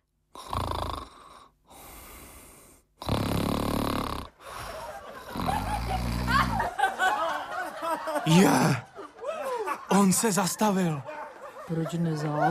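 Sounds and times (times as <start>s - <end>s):
person imitating loud rasping snoring inside a little house: 0.3s - 4.5s, 5.2s - 6.7s
laughter: 4.4s - 12.4s
speech: 8.3s - 8.9s, 9.9s - 12.4s.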